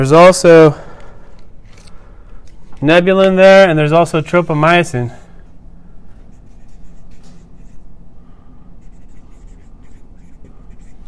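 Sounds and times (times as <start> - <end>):
speech: 0.0 - 0.8, 2.8 - 5.2
pen scratching across a surface drawing a diagram: 6.3 - 7.8, 8.8 - 11.0.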